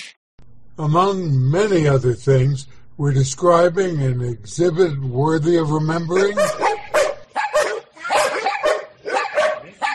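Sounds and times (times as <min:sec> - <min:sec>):
speech: 0:00.8 - 0:06.7
dogs barking: 0:06.2 - 0:09.9.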